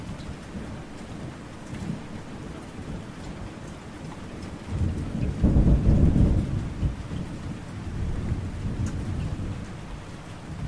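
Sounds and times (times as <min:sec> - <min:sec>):
rain falling steadily outdoors: 0:00.0 - 0:10.6
deep roll of thunder: 0:04.7 - 0:10.6.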